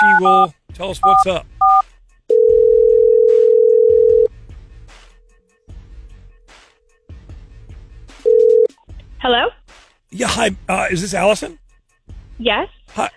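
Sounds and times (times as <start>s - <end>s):
speech: 0.2s - 1.5s, 9.2s - 11.6s, 12.4s - 13.1s
telephone dial tone: 1.1s - 4.3s, 8.3s - 8.7s.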